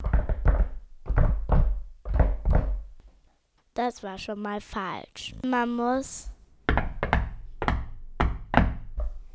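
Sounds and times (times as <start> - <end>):
knocking on a wooden shed door: 0.0 - 3.0, 6.7 - 9.2
speech: 3.8 - 6.3.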